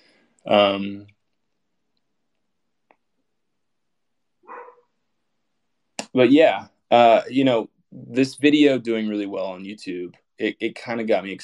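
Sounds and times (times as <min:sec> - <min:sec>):
speech: 0:00.4 - 0:01.2, 0:06.1 - 0:11.4
dog barking: 0:04.4 - 0:04.9.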